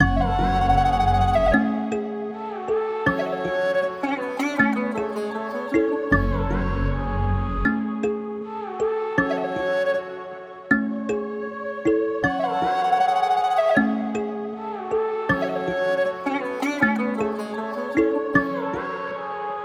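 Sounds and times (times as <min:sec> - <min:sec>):
melody in F sharp minor: 0:00.0 - 0:19.2.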